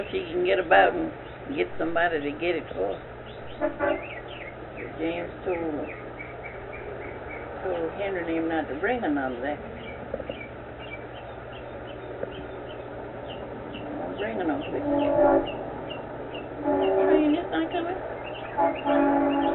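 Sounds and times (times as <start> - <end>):
speech: 0.0 - 4.2, 4.8 - 6.1, 7.6 - 10.2, 14.2 - 15.6, 16.6 - 19.5
birds chirping faintly: 0.0 - 19.5
train rumbling past: 0.0 - 19.5
train horn blasts: 3.6 - 4.2, 14.5 - 19.5.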